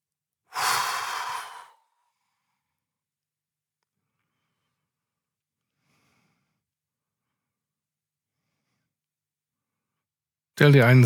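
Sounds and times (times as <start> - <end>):
long exhale in a relaxation breathing exercise: 0.5 - 2.6
speech: 10.6 - 11.0.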